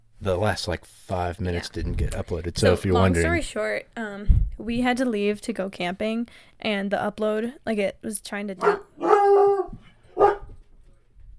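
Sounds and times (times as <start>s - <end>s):
speech: 0.2s - 9.4s
dog barking as someone arrives home: 8.6s - 10.6s.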